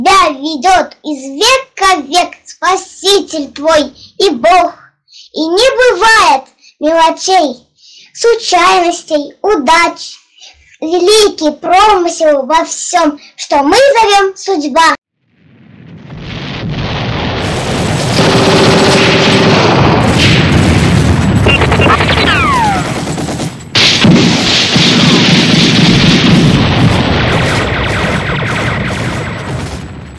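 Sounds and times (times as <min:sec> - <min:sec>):
speech: 0:00.1 - 0:07.6, 0:08.2 - 0:10.2, 0:10.8 - 0:15.0
heavy booming battle explosions: 0:15.3 - 0:30.1
dense battle gunfire: 0:17.4 - 0:30.1
brief falling whistle in battle: 0:21.5 - 0:22.9.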